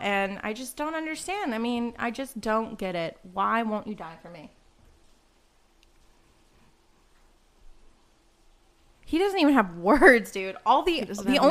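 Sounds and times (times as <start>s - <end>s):
speech: 0.0s - 4.6s, 9.1s - 11.4s
steady soft rainfall: 1.8s - 10.0s.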